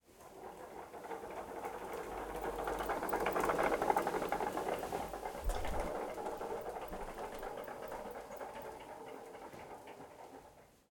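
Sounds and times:
retro vacuum cleaner exterior wheels moving slowly on carpet: 0:00.1 - 0:10.8.

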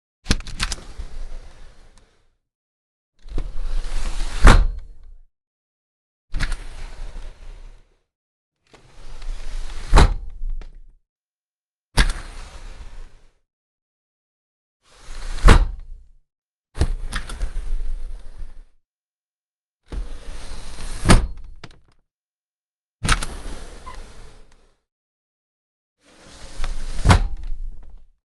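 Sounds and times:
household sliding door opening and closing: 0:00.3 - 0:02.3, 0:03.2 - 0:05.1, 0:06.3 - 0:08.0, 0:08.7 - 0:10.7, 0:12.0 - 0:13.4, 0:14.9 - 0:16.0, 0:16.8 - 0:18.7, 0:19.9 - 0:21.8, 0:23.0 - 0:24.8, 0:26.0 - 0:28.1.

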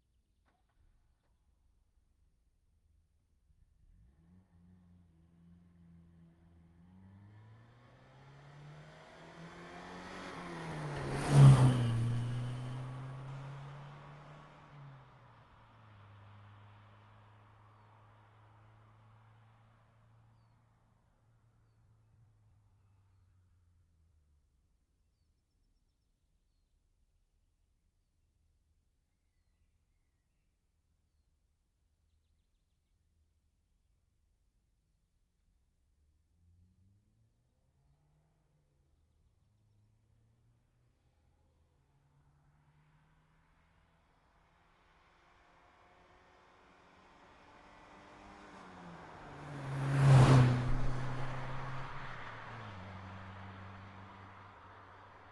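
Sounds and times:
Saab 99 t9 passing by: 0:06.8 - 0:20.2, 0:44.5 - 0:55.2.

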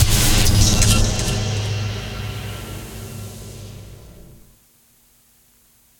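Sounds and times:
impact: 0:00.0 - 0:04.6.

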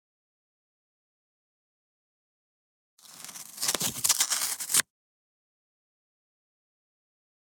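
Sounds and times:
foam board ripping and tearing: 0:03.2 - 0:04.8.

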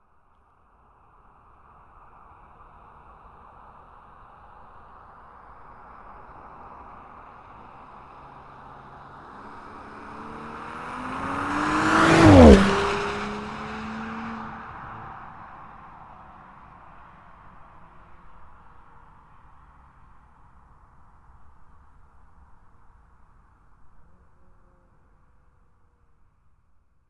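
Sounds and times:
Porsche Macan S passing by accelerating at 60 kmph: 0:06.5 - 0:16.8.

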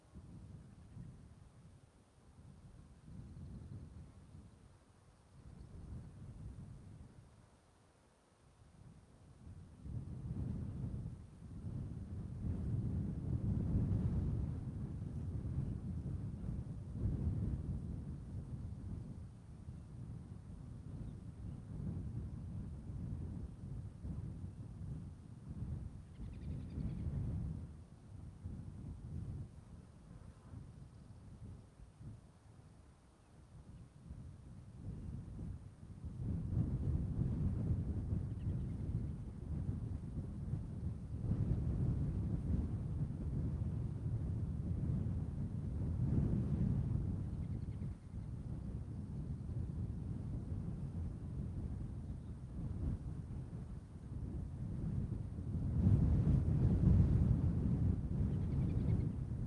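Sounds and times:
gusty wind buffeting a mountainside: 0:00.0 - 0:07.4, 0:08.6 - 0:59.4
birds on a mountainside: 0:26.0 - 0:27.2.

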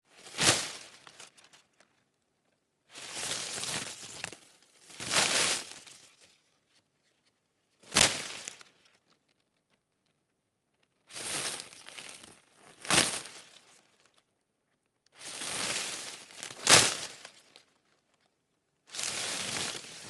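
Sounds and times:
large thick hedge leaves slapped against each other: 0:00.2 - 0:01.6, 0:02.9 - 0:06.1, 0:07.8 - 0:08.7, 0:11.1 - 0:13.7, 0:15.2 - 0:17.6, 0:18.9 - 0:20.0.

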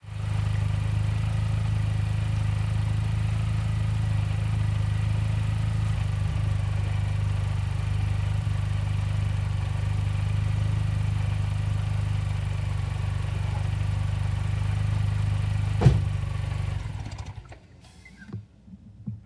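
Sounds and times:
2007 Mini Cooper engine idling on a sidewalk: 0:00.0 - 0:18.2
Mini Cooper door closing: 0:15.7 - 0:16.3.

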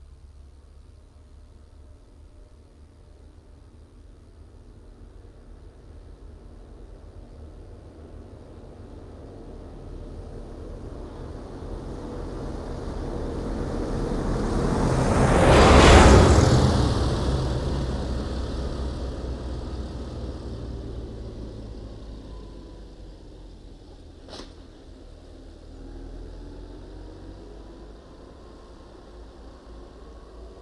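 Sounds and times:
Case II CX90 tractor passing by at medium speed: 0:08.8 - 0:30.5.

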